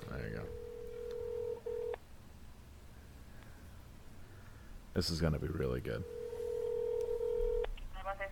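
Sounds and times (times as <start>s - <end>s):
telephone dial tone: 0.4s - 2.0s, 6.0s - 7.7s
speech: 5.0s - 6.2s.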